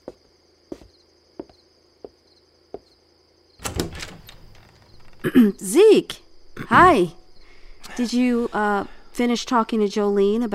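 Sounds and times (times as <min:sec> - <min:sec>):
insects chirring at night: 0:00.0 - 0:10.5
door rattling and scraping as it opens at night: 0:03.6 - 0:05.4
speech: 0:05.2 - 0:07.2, 0:08.0 - 0:10.5.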